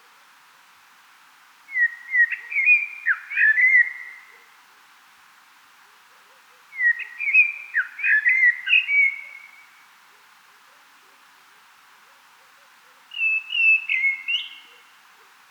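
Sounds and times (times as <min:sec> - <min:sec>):
common blackbird song: 0:01.7 - 0:04.4, 0:06.7 - 0:09.8, 0:13.1 - 0:15.0.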